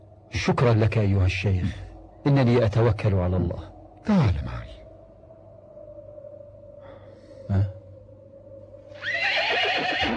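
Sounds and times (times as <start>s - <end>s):
speech: 0.4s - 4.7s, 7.5s - 7.8s
horse neighing: 9.0s - 10.1s.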